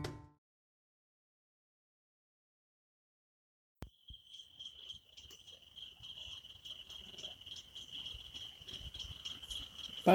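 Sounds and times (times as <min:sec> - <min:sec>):
crickets chirping in a forest: 0:03.8 - 0:10.1
low outdoor forest ambience: 0:03.8 - 0:10.1.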